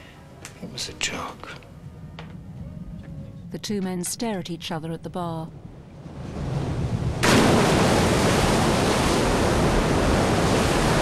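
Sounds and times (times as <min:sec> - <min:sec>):
speech: 0:00.8 - 0:01.7, 0:03.5 - 0:05.6
waves crashing over a rock on a sandy beach: 0:06.3 - 0:11.0.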